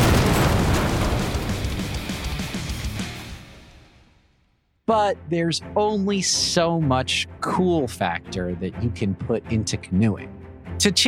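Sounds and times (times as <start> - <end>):
explosion: 0.0 - 4.2
speech: 4.9 - 11.0.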